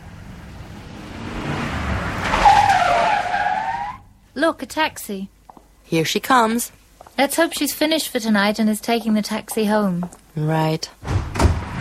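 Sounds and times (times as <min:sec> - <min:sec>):
car engine rumbling: 0:00.0 - 0:04.2
car tires squealing as the vehicle turns and slows: 0:00.7 - 0:04.1
speech: 0:04.4 - 0:11.3.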